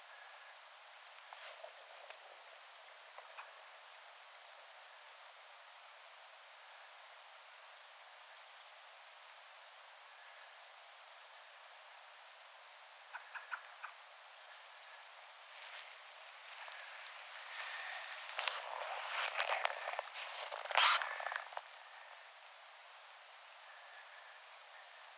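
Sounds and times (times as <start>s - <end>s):
faint background noise: 0.0s - 25.1s
Bohemian waxwing calls: 15.1s - 22.3s.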